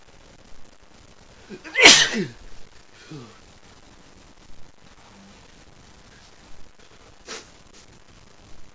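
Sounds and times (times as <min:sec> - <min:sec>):
person sneezing from an allergy to a dog: 0:01.5 - 0:02.4.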